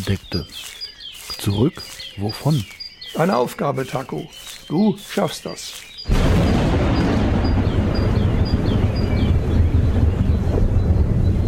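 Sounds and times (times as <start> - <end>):
speech: 0.0 - 0.8, 1.4 - 6.3
bird calls: 0.0 - 11.4
strong wind roaring over a bay: 6.1 - 11.4.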